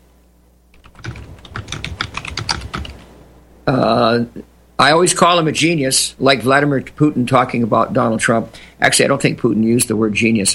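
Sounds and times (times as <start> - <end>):
rapid typing on a computer keyboard: 0.8 - 3.0
speech: 3.7 - 10.5.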